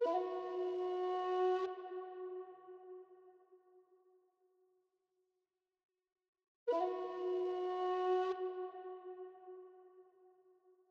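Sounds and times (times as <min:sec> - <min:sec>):
flute in E minor: 0:00.0 - 0:03.9, 0:06.7 - 0:10.8.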